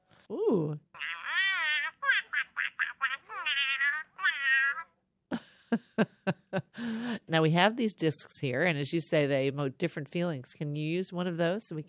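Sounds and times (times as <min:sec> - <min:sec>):
speech: 0:00.3 - 0:00.9, 0:05.7 - 0:06.2, 0:06.8 - 0:11.8
robotic toy duck giving warbling electronic quacks: 0:01.0 - 0:04.9.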